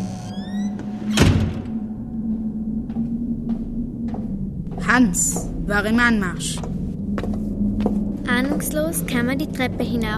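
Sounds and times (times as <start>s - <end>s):
front door creaking open: 0.0s - 1.9s
steady low hum: 0.0s - 10.1s
speech: 4.9s - 6.7s, 8.4s - 10.1s.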